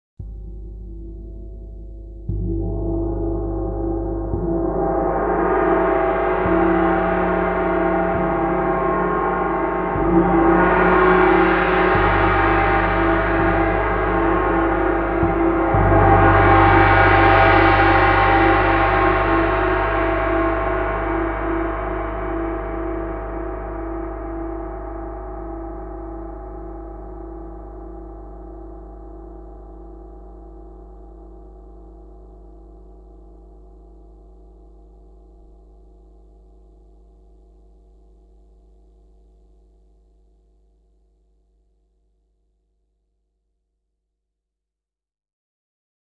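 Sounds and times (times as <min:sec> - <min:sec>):
gongs: 0:00.2 - 0:36.5.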